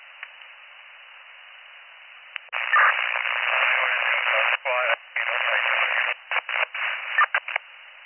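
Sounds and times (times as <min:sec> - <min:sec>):
band-limited radio transmission static: 0:02.4 - 0:07.6.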